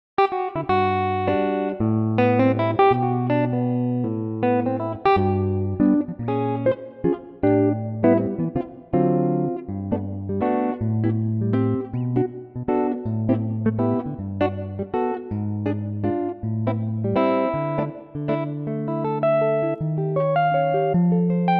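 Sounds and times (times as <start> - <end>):
electric guitar playing G: 0.2 - 21.5.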